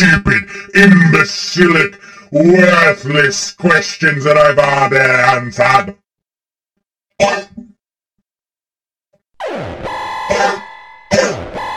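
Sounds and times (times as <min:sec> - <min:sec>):
speech: 0:00.0 - 0:06.0, 0:07.2 - 0:07.7, 0:09.4 - 0:10.6
throat clearing: 0:07.2 - 0:07.7, 0:10.3 - 0:11.5
loud harsh buzzing alarm-like tone: 0:09.4 - 0:11.7
person coughing: 0:10.3 - 0:11.5.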